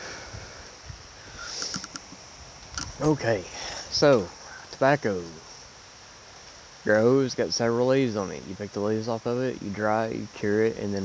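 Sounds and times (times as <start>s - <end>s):
wind gusts outdoors: 0.0s - 11.0s
high-pitched ticks: 1.4s - 3.0s
speech: 3.0s - 5.5s, 6.8s - 11.0s.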